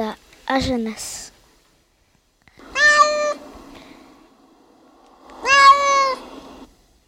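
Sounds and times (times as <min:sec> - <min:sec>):
speech: 0:00.0 - 0:01.3
cat meowing: 0:02.6 - 0:03.5, 0:05.3 - 0:06.4.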